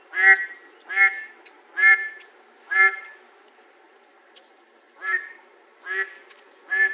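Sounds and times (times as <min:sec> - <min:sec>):
light background noise: 0:00.0 - 0:06.9
mallard giving loud nasal quacks: 0:00.1 - 0:03.2, 0:05.0 - 0:06.9.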